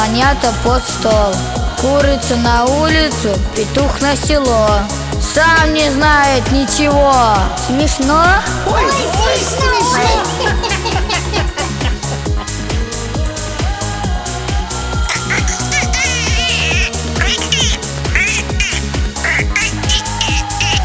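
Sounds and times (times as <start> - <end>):
loud rhythmic music with a steady beat: 0.0 - 20.8
speech: 0.2 - 11.1
laughter: 8.6 - 12.9, 15.1 - 20.8
voice quacking like a duck: 15.1 - 20.8.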